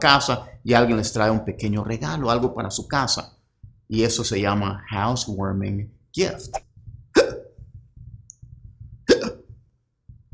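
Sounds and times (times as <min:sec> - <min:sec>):
speech: 0:00.0 - 0:06.7
faint low rumbling background: 0:00.0 - 0:10.3
sharp gulping hiccups: 0:07.1 - 0:07.6, 0:09.0 - 0:09.5.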